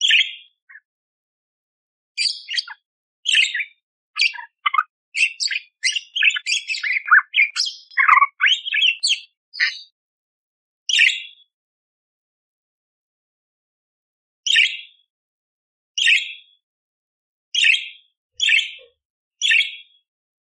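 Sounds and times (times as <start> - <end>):
budgerigar chattering squeaky warbled song: 0.0 - 0.8, 2.2 - 9.9, 17.6 - 19.8.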